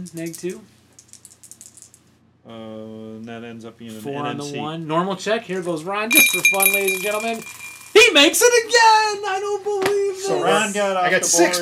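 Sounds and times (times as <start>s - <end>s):
speech: 0.0s - 0.8s, 2.4s - 11.5s
dice rolling and bouncing across a surface: 0.0s - 2.0s, 6.1s - 8.0s.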